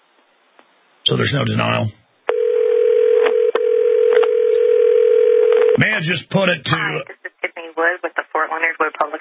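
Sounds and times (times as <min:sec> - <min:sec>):
speech: 0:01.1 - 0:02.0, 0:05.8 - 0:07.2, 0:08.0 - 0:09.1
steady loud telephone dial tone: 0:02.3 - 0:05.8.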